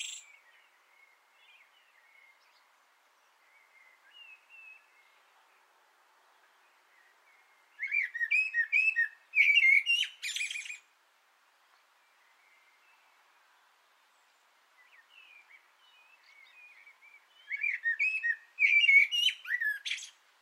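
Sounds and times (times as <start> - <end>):
Common blackbird singing from an antenna: 0.0 - 2.6, 3.4 - 5.2, 7.0 - 10.9, 14.8 - 20.2.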